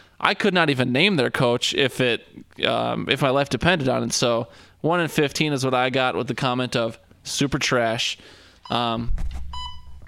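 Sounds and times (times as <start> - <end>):
speech: 0.2 - 9.4
electronic beeps: 8.6 - 10.0.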